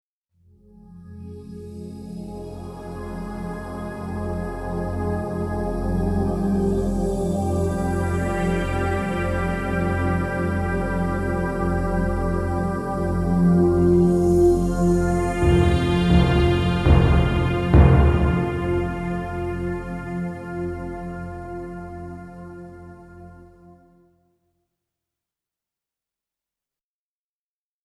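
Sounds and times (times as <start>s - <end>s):
foreboding synth: 1.8s - 22.6s.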